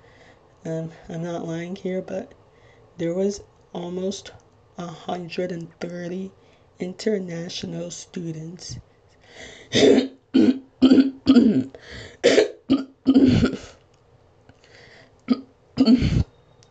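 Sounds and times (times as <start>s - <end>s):
speech: 0.6s - 2.4s, 3.0s - 10.1s
raspy throat-clearing: 9.8s - 13.8s, 15.3s - 16.3s.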